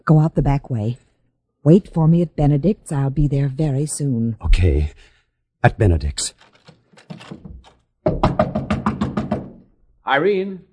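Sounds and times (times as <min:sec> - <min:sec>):
speech: 0:00.1 - 0:06.5, 0:07.1 - 0:08.5, 0:10.1 - 0:10.7
rapid sharp knocks on a door: 0:07.2 - 0:09.7.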